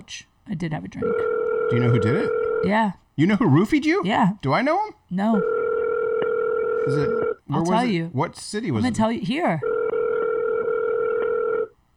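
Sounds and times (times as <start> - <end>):
speech: 0.0 - 5.6, 6.8 - 9.8
telephone dial tone on an outgoing call: 1.2 - 2.6, 5.4 - 7.4, 9.6 - 11.7.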